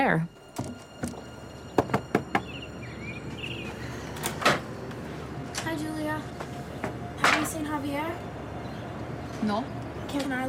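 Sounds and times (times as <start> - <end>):
faint chirping tones: 0.0 - 10.1
speech: 0.1 - 0.8, 9.4 - 10.4
quick evenly spaced knocks on an apartment door: 1.8 - 2.5.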